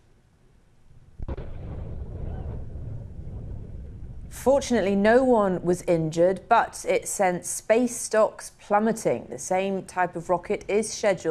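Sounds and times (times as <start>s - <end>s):
rocket exploding on launch pad during engine test: 1.2s - 4.5s
heavy rumbling roar: 1.3s - 4.6s
speech: 4.3s - 11.2s.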